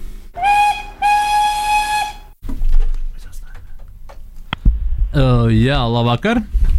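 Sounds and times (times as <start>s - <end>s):
loud sustained steam whistle blasts: 0.4s - 2.4s
speech: 5.2s - 6.6s.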